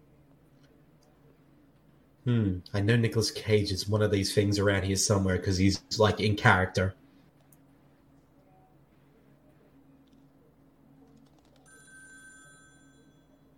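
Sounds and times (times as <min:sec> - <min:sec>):
low steady hum: 0:00.0 - 0:13.5
speech: 0:02.2 - 0:07.0
telephone ringing with an electronic trill: 0:11.7 - 0:13.4.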